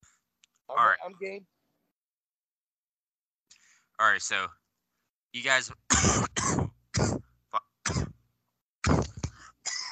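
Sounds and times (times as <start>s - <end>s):
speech: 1.0s - 1.6s, 4.0s - 4.6s, 5.3s - 6.5s
person coughing: 5.9s - 8.2s, 8.8s - 9.9s.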